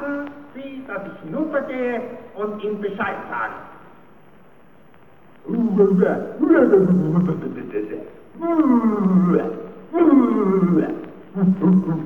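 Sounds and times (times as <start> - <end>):
speech: 0.9 - 3.7, 5.4 - 12.0
lion's roar imitated by a human voice in a 1932 German drama: 5.4 - 7.8, 8.4 - 12.0.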